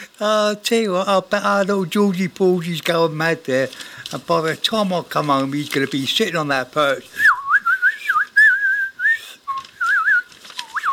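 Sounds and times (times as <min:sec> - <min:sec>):
speech: 0:00.2 - 0:07.2
clear bright whistled melody: 0:07.2 - 0:10.9.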